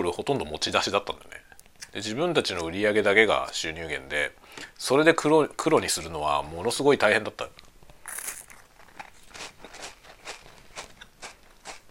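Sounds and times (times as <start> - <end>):
speech: 0.0 - 1.4, 2.0 - 7.6
Nabisco Ritz crackers eaten after a meal: 7.6 - 11.8.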